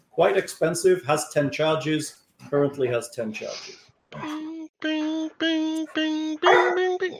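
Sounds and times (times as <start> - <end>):
speech: 0.2 - 5.0
dog barking in short yippy barks: 6.4 - 6.9.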